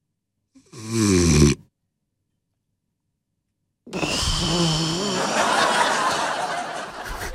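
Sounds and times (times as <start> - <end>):
voice imitating snoring with rasping snore and gasping snort: 0.6 - 1.6, 3.9 - 5.8
laughter: 4.0 - 7.3.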